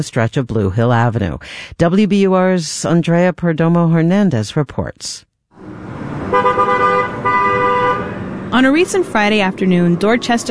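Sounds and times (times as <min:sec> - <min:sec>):
speech: 0:00.0 - 0:05.3, 0:08.6 - 0:10.4
car horns honking in traffic at a busy intersection: 0:05.6 - 0:08.8
low rumble of car engines at an intersection: 0:05.6 - 0:10.4.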